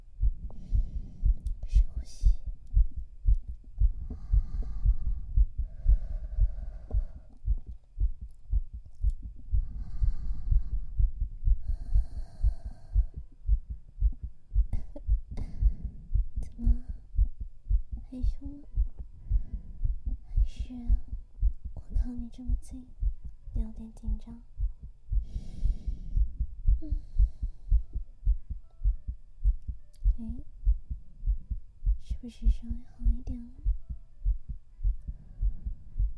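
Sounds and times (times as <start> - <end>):
fast heartbeat heard through a chest: 0.0 - 36.1
low hum: 0.0 - 36.1
speech: 18.2 - 18.8, 20.7 - 21.1, 22.0 - 23.0, 23.6 - 24.5, 26.8 - 27.1, 32.2 - 33.7.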